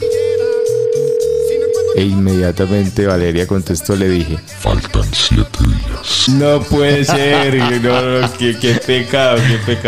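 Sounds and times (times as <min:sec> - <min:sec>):
telephone ringing as an electronic tone: 0:00.0 - 0:02.2
speech: 0:02.0 - 0:09.8
laughter: 0:06.4 - 0:09.8.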